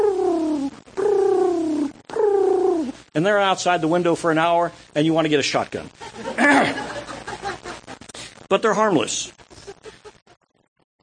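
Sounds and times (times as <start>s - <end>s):
voice imitating a dove cooing: 0.0s - 3.0s
speech: 3.2s - 6.8s, 8.5s - 9.4s
laughter: 6.0s - 8.1s, 9.5s - 10.4s.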